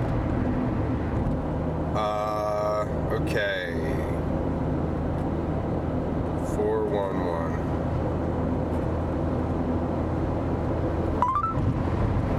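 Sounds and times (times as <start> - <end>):
road noise inside a moving car: 0.0 - 12.3
electronic tones: 11.2 - 11.7.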